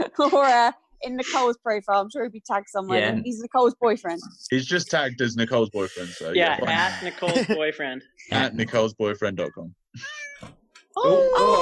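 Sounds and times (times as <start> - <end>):
speech: 0.2 - 11.6
cat meowing with chirps and a long wailing meow: 9.4 - 11.6.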